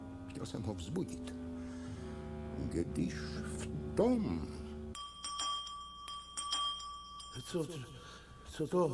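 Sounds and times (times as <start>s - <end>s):
speech: 0.4s - 1.4s, 2.6s - 4.6s, 7.4s - 8.9s
bell ringing with a bright metallic tone: 4.9s - 8.9s.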